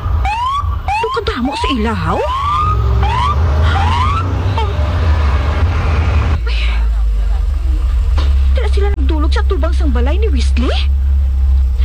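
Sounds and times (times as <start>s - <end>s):
police patrol car rising siren whoops: 0.0s - 6.0s
police patrol car heavy engine rumble: 0.0s - 11.8s
speech: 1.4s - 2.4s, 9.3s - 11.0s.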